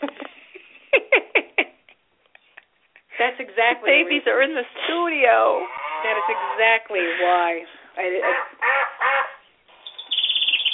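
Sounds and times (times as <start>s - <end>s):
speech: 3.2s - 8.6s
duck quacking loudly: 8.1s - 9.5s
rattling series of soft chattering calls: 8.6s - 10.7s.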